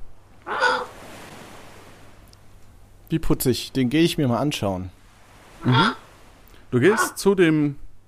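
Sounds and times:
parrot squawking: 0:00.5 - 0:00.9, 0:05.6 - 0:06.0, 0:06.8 - 0:07.2
speech: 0:03.1 - 0:05.0, 0:05.6 - 0:06.0, 0:06.7 - 0:07.8.

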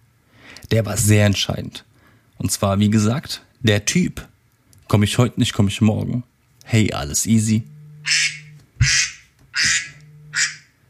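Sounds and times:
faint electronic hum: 0:00.0 - 0:10.8
speech: 0:00.7 - 0:04.3, 0:04.9 - 0:09.0
alarm ringtone of duck quacks: 0:08.0 - 0:10.8.

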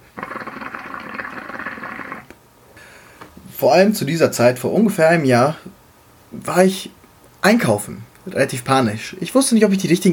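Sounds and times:
water bubbling in a water pipe while smoking: 0:00.0 - 0:02.4
speech: 0:03.6 - 0:05.8, 0:06.4 - 0:10.1.

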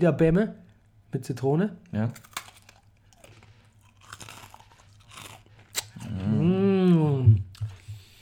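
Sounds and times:
speech: 0:00.0 - 0:02.4
crunching and chewing of Russisch Brot letter biscuits: 0:01.8 - 0:06.5.

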